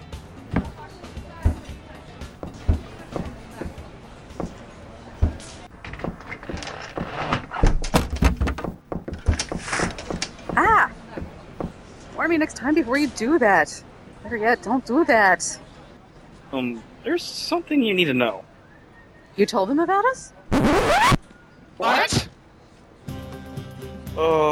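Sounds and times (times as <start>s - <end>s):
irregular knocks and thumps: 0.5s - 11.8s, 20.5s - 21.2s
front door thudding shut: 2.4s - 11.8s
speech: 12.3s - 15.6s, 16.5s - 18.5s, 19.4s - 21.1s.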